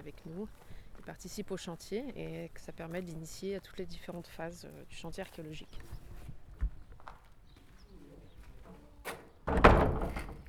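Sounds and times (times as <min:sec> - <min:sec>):
speech: 0:00.0 - 0:06.0
large heavy door of a cloister shutting at an archaeological dig site: 0:09.1 - 0:10.4.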